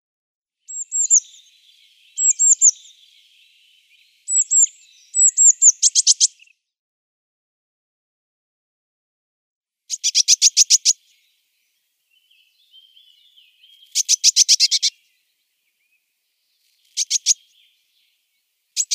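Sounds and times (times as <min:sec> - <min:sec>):
Eurasian Blue Tit calls: 0:00.7 - 0:06.6, 0:09.9 - 0:18.9.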